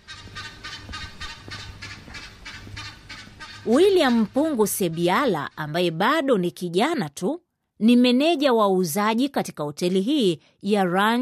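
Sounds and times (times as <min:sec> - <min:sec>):
birds calling around a lakeside ranch hotel: 0:00.0 - 0:05.8
speech: 0:03.6 - 0:11.1.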